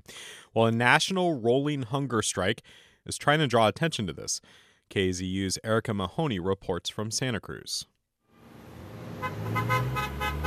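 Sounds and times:
speech: 0.5s - 7.9s
low rumble of passing traffic: 8.4s - 10.4s
car horns honking in support of hunger strikers in downtown Santa Cruz: 9.0s - 10.4s.

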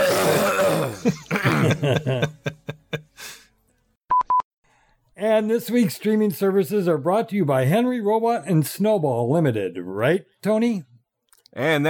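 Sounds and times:
phlegmy throat clearing: 0.0s - 1.9s
speech: 1.0s - 2.3s, 5.4s - 10.9s, 11.6s - 11.8s
laughter: 1.0s - 3.1s.

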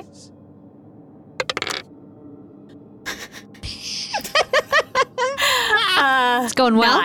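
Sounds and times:
dice rolling on a hard table in a tabletop game: 1.4s - 1.8s
laughter: 3.1s - 6.3s
speech: 6.5s - 7.0s.

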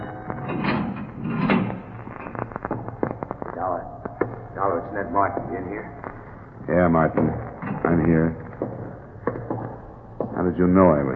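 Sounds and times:
heavy steel door dragged open with grinding scrape: 0.0s - 2.2s
creaks and metallic clanks of steel door: 0.0s - 11.1s
speech: 3.6s - 4.0s, 4.6s - 8.8s, 10.4s - 11.1s.

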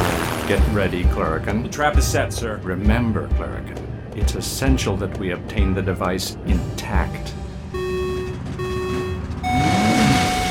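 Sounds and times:
speech: 0.5s - 7.4s
truck engines roaring at high speed on a raceway: 6.3s - 10.4s.

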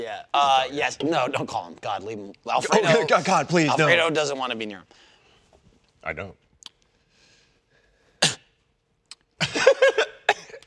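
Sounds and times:
speech: 0.0s - 5.1s, 6.0s - 6.4s
person coughing and hacking: 8.2s - 8.5s, 9.4s - 10.6s.

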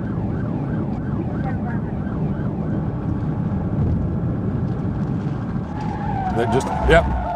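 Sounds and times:
police car siren wailing on a highway: 0.0s - 3.6s, 5.6s - 7.3s
car engine roaring on a highway: 2.7s - 7.3s
heavy thud of police car ramming another car in a pit maneuver: 3.7s - 7.3s
car tires screeching on a highway: 4.5s - 7.3s.

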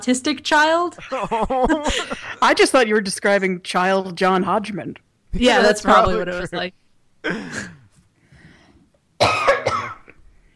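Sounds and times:
speech: 0.0s - 7.8s
laughter: 1.0s - 2.6s
person coughing: 7.2s - 8.0s, 9.2s - 10.2s.

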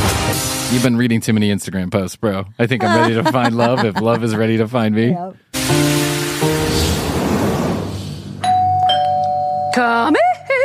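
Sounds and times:
speech: 0.7s - 6.0s, 9.8s - 10.3s
laughter: 2.8s - 4.8s
hiss: 5.6s - 8.4s
doorbell two-note ding-dong chime: 8.4s - 10.0s.

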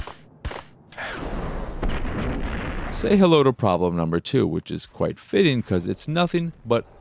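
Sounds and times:
grenade explosion in a video game shooter: 0.0s - 3.2s
loud rumbling blast noise: 1.0s - 3.2s
speech: 3.0s - 6.9s.

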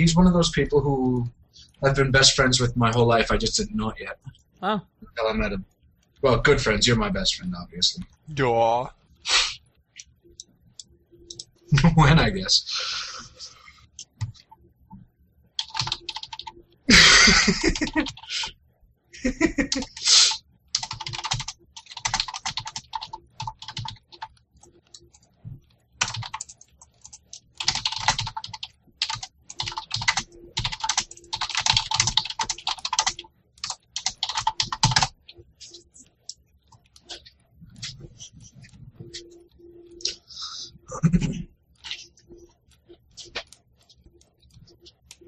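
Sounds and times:
speech: 0.0s - 9.5s, 11.7s - 13.1s, 16.9s - 18.6s, 19.2s - 20.0s
typing on a computer keyboard while writing a blog post: 10.0s - 11.9s, 15.6s - 16.7s, 17.5s - 18.3s, 19.5s - 20.1s, 20.7s - 39.9s
laughter: 16.9s - 18.5s, 19.2s - 20.0s, 40.9s - 41.4s.

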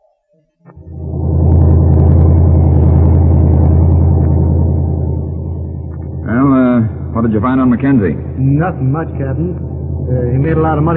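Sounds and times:
car engine roaring as it speeds off: 0.7s - 10.9s
speech: 7.4s - 10.9s.

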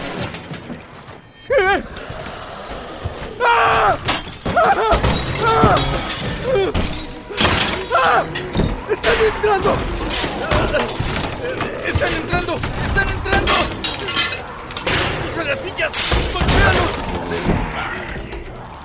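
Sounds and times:
wailing groaning voices: 1.4s - 18.8s
heavy thuds of doors being smashed: 3.8s - 17.8s
glass shattering: 4.0s - 17.0s.

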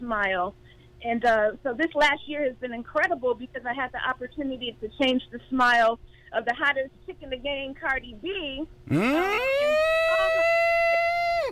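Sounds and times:
speech: 0.0s - 9.8s
siren wailing: 8.9s - 11.5s.

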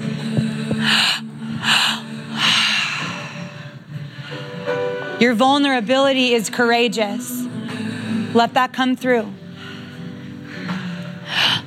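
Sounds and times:
heavy forceful breathwork breaths drawn into the belly: 0.0s - 4.7s, 9.4s - 11.6s
soft low musical drone: 0.0s - 11.6s
speech: 5.2s - 7.3s, 8.4s - 9.4s.

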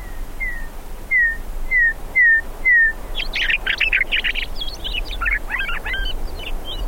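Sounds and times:
meadowlark singing: 0.0s - 6.8s.

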